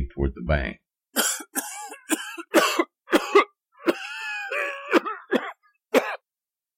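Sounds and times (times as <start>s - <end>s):
speech: 0.0s - 0.8s
person coughing and sputtering after falling in water: 1.2s - 6.2s.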